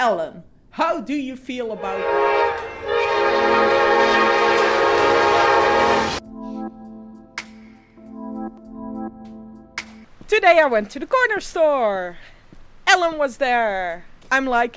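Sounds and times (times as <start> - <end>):
speech: 0.0 - 3.8, 10.3 - 12.3, 12.9 - 14.7
train roaring past: 1.7 - 6.3.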